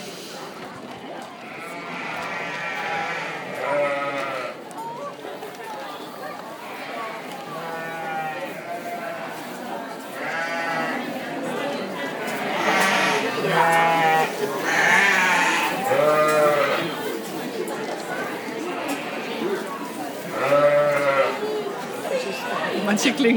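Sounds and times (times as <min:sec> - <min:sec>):
people chattering: 0:00.0 - 0:23.3
steady barnyard murmur: 0:00.0 - 0:23.3
flock of sheep bleating in an open stall: 0:01.5 - 0:04.6, 0:07.1 - 0:09.3, 0:10.2 - 0:11.0, 0:12.2 - 0:17.0, 0:20.3 - 0:21.4.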